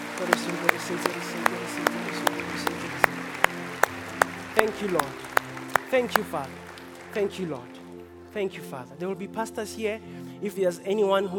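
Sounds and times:
audience clapping hands in a steady rhythm: 0:00.0 - 0:08.3
indistinct voices: 0:00.0 - 0:08.4
speech: 0:00.2 - 0:03.2, 0:04.6 - 0:05.3, 0:05.9 - 0:07.8, 0:08.4 - 0:11.3.

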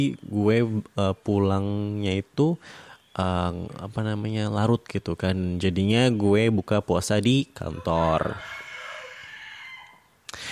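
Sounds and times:
speech: 0:00.0 - 0:08.6
rooster crowing at a home with many chickens: 0:07.7 - 0:10.2.

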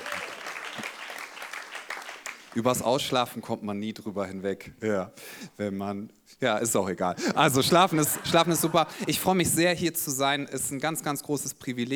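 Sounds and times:
audience at a church service clapping: 0:00.0 - 0:03.0
speech: 0:02.6 - 0:11.9
laughter: 0:07.5 - 0:09.6.

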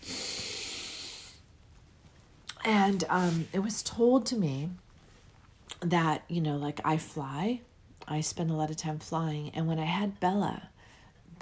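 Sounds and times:
long airy intake of breath: 0:00.0 - 0:01.4
speech: 0:02.6 - 0:04.8, 0:05.8 - 0:10.7.

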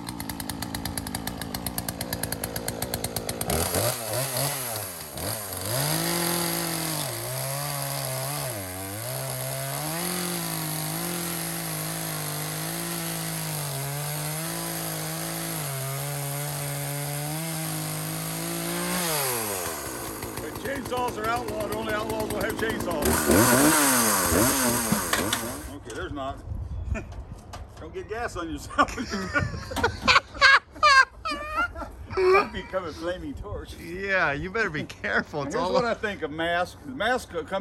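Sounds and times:
chainsaw cutting wood: 0:00.0 - 0:25.8
speech: 0:20.9 - 0:25.0, 0:28.0 - 0:29.9, 0:32.5 - 0:37.5
laughter: 0:28.6 - 0:33.0.

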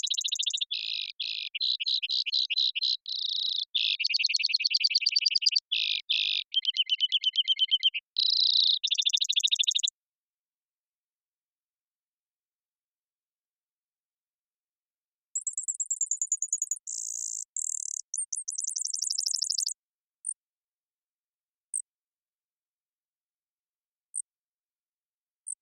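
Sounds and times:
Brewer's sparrow isolated chips: 0:00.0 - 0:09.9, 0:15.4 - 0:19.7
several male Brewer's sparrows singing high trills and buzzy phrases in sagebrush steppe: 0:00.0 - 0:09.9, 0:15.4 - 0:19.8.

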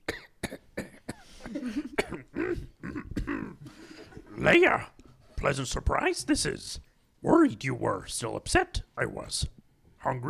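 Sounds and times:
old man coughing and hacking: 0:00.1 - 0:04.4
speech: 0:04.4 - 0:10.2.

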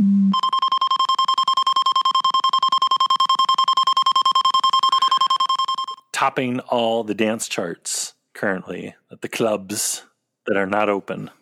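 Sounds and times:
spaceship alarm sound effect: 0:00.0 - 0:06.0
speech: 0:06.3 - 0:11.3.

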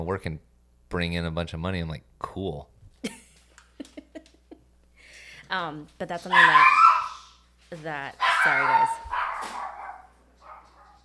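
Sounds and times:
speech: 0:00.0 - 0:03.2, 0:05.5 - 0:06.8, 0:07.7 - 0:09.2
laughter: 0:03.0 - 0:04.7
dog barking: 0:06.2 - 0:11.0.

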